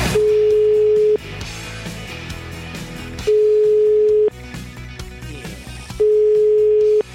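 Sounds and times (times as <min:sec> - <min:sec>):
telephone ringback tone as a call is placed: 0:00.2 - 0:01.2, 0:03.2 - 0:04.3, 0:06.0 - 0:07.1.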